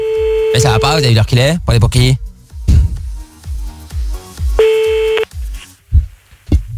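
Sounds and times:
telephone line tone as a caller redials: 0:00.0 - 0:01.0, 0:04.6 - 0:05.2
regular thumping low beat: 0:00.0 - 0:06.7
speech: 0:00.5 - 0:02.3.

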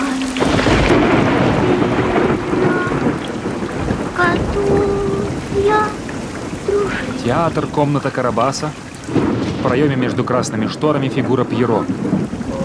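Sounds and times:
deep thunder rumbling: 0:00.0 - 0:12.6
heavy rain pouring onto a city street at night: 0:00.0 - 0:12.6
speech: 0:07.3 - 0:12.3.

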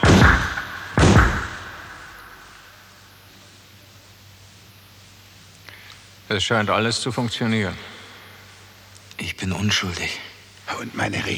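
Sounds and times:
heavy doors of a gas van slamming shut: 0:00.0 - 0:02.6
speech: 0:06.3 - 0:08.0, 0:09.4 - 0:11.3.

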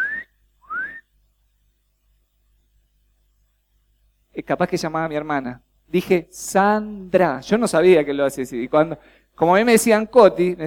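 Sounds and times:
mother whistling to call her child: 0:00.0 - 0:01.1
speech: 0:04.4 - 0:10.6.

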